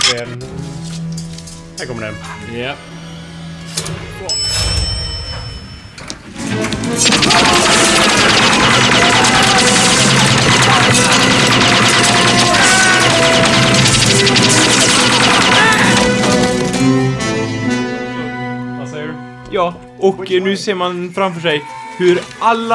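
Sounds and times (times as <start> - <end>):
swelling film score: 0.0 - 22.1
speech: 0.1 - 0.9, 1.8 - 3.0, 3.8 - 5.0, 6.4 - 8.4, 19.5 - 22.7
people shouting: 7.0 - 16.7
crashes: 7.0 - 16.8
dense movie gunfire mowing down an army of kendo fighters: 7.0 - 17.2.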